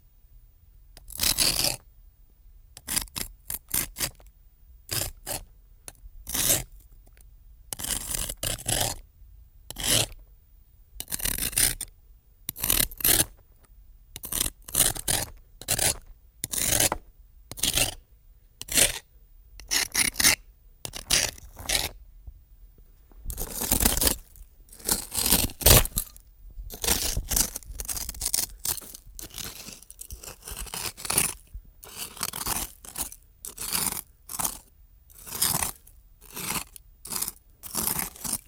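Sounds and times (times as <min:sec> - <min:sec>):
knife scraping: 0:01.1 - 0:01.8, 0:02.8 - 0:04.2, 0:04.9 - 0:06.8, 0:07.8 - 0:09.0, 0:09.7 - 0:10.2, 0:11.0 - 0:11.9, 0:12.5 - 0:13.4, 0:14.2 - 0:18.0, 0:18.6 - 0:19.0, 0:19.6 - 0:22.0, 0:23.3 - 0:38.4.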